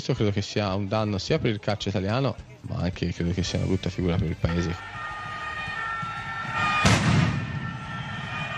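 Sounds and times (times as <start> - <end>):
speech: 0.0 - 5.0
football stadium noise: 0.0 - 8.5
firecracker blast in a football stadium: 6.5 - 8.5.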